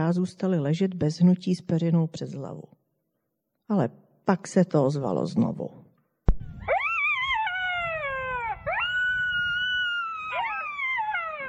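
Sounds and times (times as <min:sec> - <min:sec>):
speech: 0:00.0 - 0:02.8, 0:03.7 - 0:05.8
piercing howling shriek from the desert: 0:06.6 - 0:11.4.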